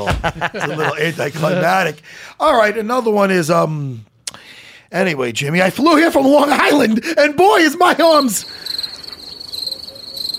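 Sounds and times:
laughter: 0:00.0 - 0:02.0
speech: 0:00.0 - 0:04.1, 0:04.9 - 0:08.8
stuttering cricket chirping sound effect: 0:07.8 - 0:10.3.

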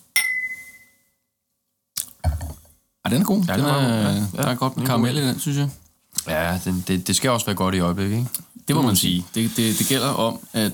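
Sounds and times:
glasses clinking in a toast: 0:00.2 - 0:01.0
speech: 0:03.1 - 0:10.7.

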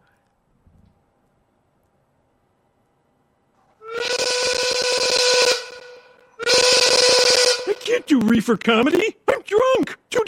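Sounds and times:
loud whistling hiss with something caught in the whistle: 0:03.8 - 0:07.9
speech: 0:08.1 - 0:10.2.

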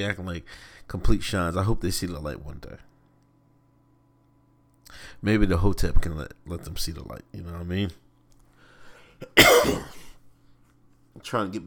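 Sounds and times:
speech: 0:00.0 - 0:02.9, 0:04.9 - 0:08.0, 0:09.2 - 0:10.0, 0:11.2 - 0:11.6
intake of breath: 0:08.5 - 0:09.2
harsh raspy cough: 0:09.2 - 0:10.2.

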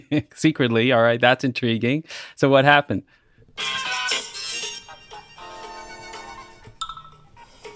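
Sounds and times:
speech: 0:00.1 - 0:04.1
cell phone ringtone playing a TV theme tune: 0:03.6 - 0:07.7.

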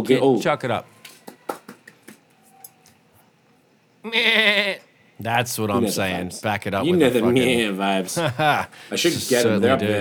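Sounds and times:
speech: 0:00.0 - 0:01.0, 0:04.0 - 0:10.0
goat bleating: 0:04.0 - 0:04.9.

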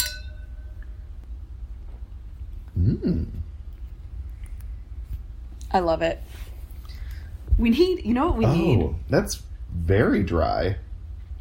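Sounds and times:
wine glasses clinking in a toast: 0:00.0 - 0:01.0
quiet low hum: 0:00.0 - 0:11.3
speech: 0:02.8 - 0:03.5, 0:05.7 - 0:06.5, 0:07.6 - 0:10.8.

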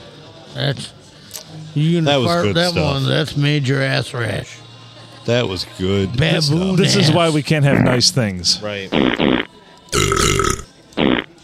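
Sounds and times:
speech: 0:00.6 - 0:01.0, 0:01.8 - 0:04.6, 0:05.2 - 0:10.4
long burp: 0:09.0 - 0:11.3.

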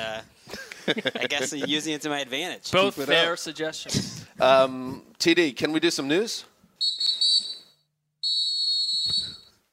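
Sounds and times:
speech: 0:00.0 - 0:07.1
referee's whistle blasts: 0:06.8 - 0:09.6.

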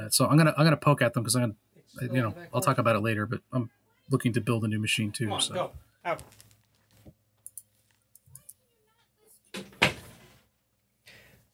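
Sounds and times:
speech: 0:00.1 - 0:06.5
door shutting with a thud and rattle: 0:09.6 - 0:10.3.

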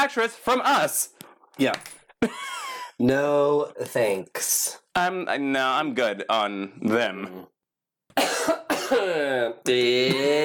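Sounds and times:
speech: 0:00.0 - 0:07.5, 0:08.2 - 0:10.4
person coughing: 0:08.2 - 0:09.6.

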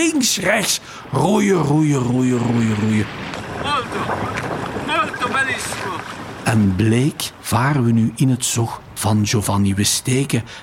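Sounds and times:
speech: 0:00.0 - 0:04.7, 0:05.5 - 0:10.6
wind noise: 0:00.0 - 0:10.6
waves slapping against the sides of kayaks in Venice: 0:02.3 - 0:07.4.

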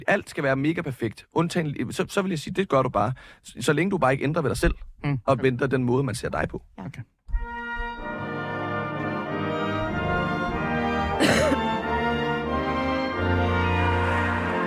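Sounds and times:
speech: 0:00.0 - 0:07.2
steady sustained tonal background: 0:07.4 - 0:14.6
person coughing into the microphone: 0:11.2 - 0:11.8.

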